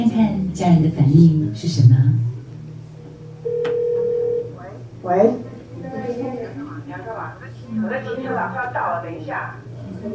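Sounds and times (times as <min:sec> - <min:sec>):
faint hum: 0:00.0 - 0:10.1
speech: 0:00.6 - 0:02.3, 0:05.0 - 0:05.5
telephone ringing with a steady electronic tone: 0:03.4 - 0:04.5.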